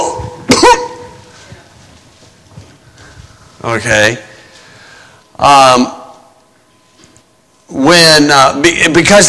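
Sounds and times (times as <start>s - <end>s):
rough throat-clearing rasp: 0.0s - 1.1s
sharp throaty cough: 0.0s - 1.1s
quiet hum: 0.0s - 9.2s
speech: 3.6s - 4.3s, 5.4s - 6.0s, 7.8s - 9.2s.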